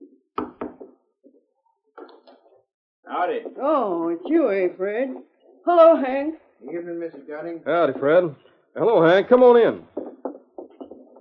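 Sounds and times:
knocking on a wooden door: 0:00.4 - 0:01.0, 0:09.8 - 0:11.1
softer sounds: 0:02.0 - 0:11.1
speech: 0:03.1 - 0:09.9.

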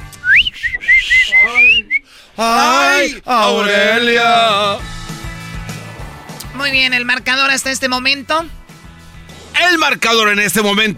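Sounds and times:
person whistling a short calling tune: 0:00.1 - 0:02.1
speech: 0:02.4 - 0:04.9, 0:06.6 - 0:08.6, 0:09.6 - 0:10.9.

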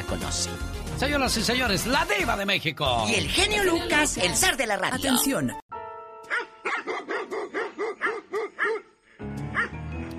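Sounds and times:
speech: 0:00.1 - 0:05.6
small female dog barking: 0:06.3 - 0:08.9.

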